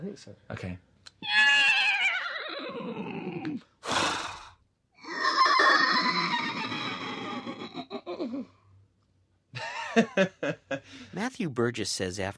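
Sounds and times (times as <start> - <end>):
speech: 0.1 - 1.4, 2.6 - 3.7, 10.0 - 12.3
people imitating horse whinny with their voices: 1.2 - 8.5.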